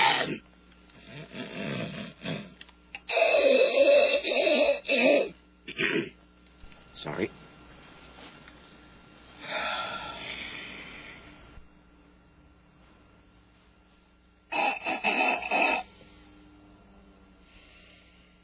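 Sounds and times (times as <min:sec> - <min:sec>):
person snorting through the nose to clear sinuses: 0:00.0 - 0:00.4, 0:01.0 - 0:06.2, 0:14.5 - 0:15.9.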